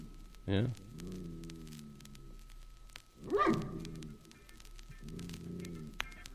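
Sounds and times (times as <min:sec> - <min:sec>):
quiet drawn-out tonal sounds: 0:00.0 - 0:06.3
steady static hiss: 0:00.0 - 0:06.3
recorded dog barking: 0:03.3 - 0:03.8.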